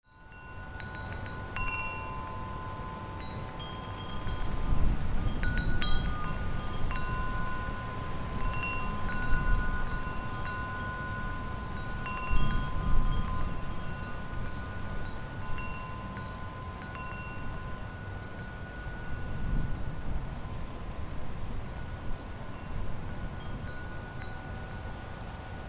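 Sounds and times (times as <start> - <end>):
wind chimes in daytime ambience: 0.0 - 25.6.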